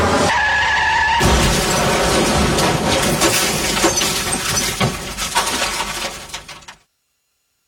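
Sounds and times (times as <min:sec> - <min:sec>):
speeding car's tyres screeching in a long skid at a bend: 0:00.0 - 0:06.8
car crashing into a wall: 0:01.2 - 0:06.8
shattering debris: 0:01.2 - 0:06.9.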